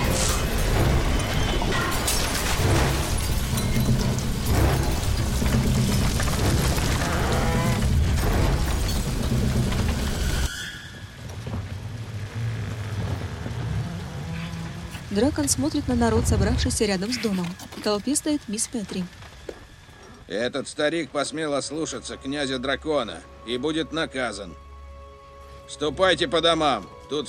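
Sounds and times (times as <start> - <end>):
glass bottles bursting and exploding in a house fire: 0.0 - 10.5
crackling flames of a house fire: 0.0 - 22.2
speech: 15.2 - 19.2, 20.3 - 24.6, 25.7 - 27.2.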